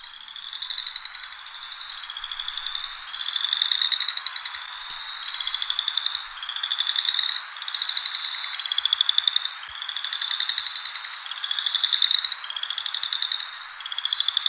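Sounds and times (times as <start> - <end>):
chorus frogs calling in chorus: 0.0 - 14.4.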